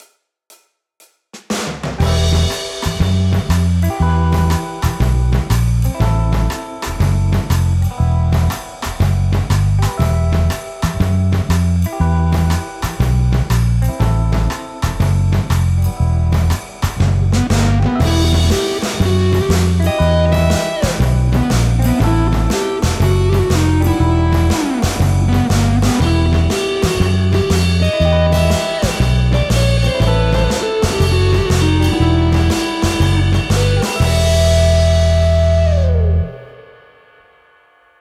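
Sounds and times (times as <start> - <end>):
backing music: 1.7 - 36.8.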